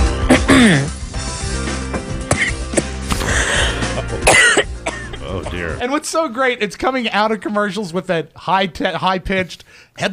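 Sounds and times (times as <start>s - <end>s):
woman broadcaster coughing on air: 0.3s - 0.9s, 2.3s - 5.8s
woman clearing her throat: 0.3s - 0.9s, 2.3s - 3.4s, 4.0s - 5.8s
speech: 6.1s - 10.1s.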